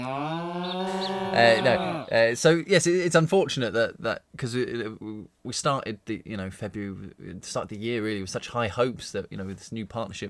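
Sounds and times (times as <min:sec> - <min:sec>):
cow mooing: 0:00.0 - 0:02.2
speech: 0:01.4 - 0:10.2.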